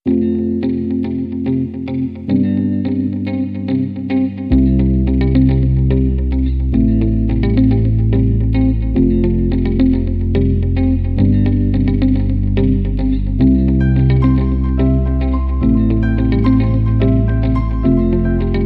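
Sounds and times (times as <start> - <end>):
acoustic music without drums: 0.1 - 18.6.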